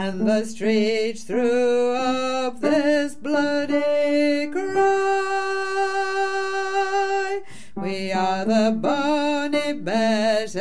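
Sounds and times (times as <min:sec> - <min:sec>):
low tenor chorus singing: 0:00.2 - 0:10.5.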